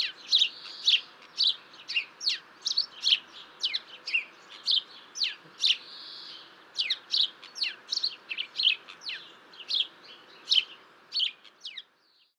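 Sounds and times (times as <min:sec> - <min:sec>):
faint background hiss: 0:00.0 - 0:12.3
house sparrow giving territorial chirp calls: 0:00.0 - 0:12.3.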